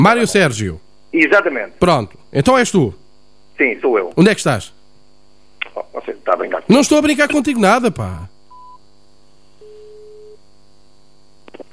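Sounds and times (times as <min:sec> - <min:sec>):
speech: 0:00.0 - 0:03.0, 0:03.6 - 0:04.8, 0:05.7 - 0:08.3
faint constant hum: 0:00.0 - 0:11.7
phone busy tone after a dropped call: 0:08.5 - 0:08.8, 0:09.6 - 0:10.4.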